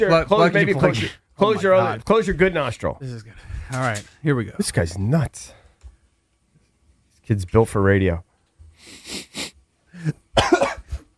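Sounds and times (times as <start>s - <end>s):
speech: 0.0s - 5.6s, 7.3s - 9.3s, 10.0s - 10.6s
harsh breathy coughing: 10.0s - 11.1s.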